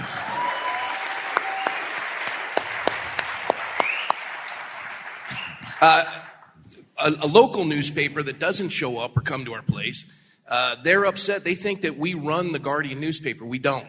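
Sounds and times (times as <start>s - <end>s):
crowd in a sanctuary applauding: 0.0s - 6.6s
speech: 5.8s - 6.2s, 7.0s - 13.8s.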